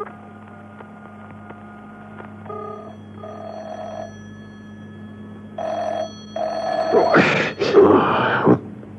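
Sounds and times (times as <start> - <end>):
low hum: 0.0 - 8.9
car telephone ringing unanswered: 2.4 - 7.9.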